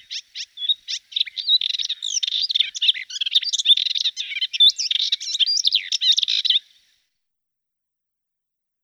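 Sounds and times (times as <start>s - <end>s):
Hippolais warbler song: 0.0s - 7.0s.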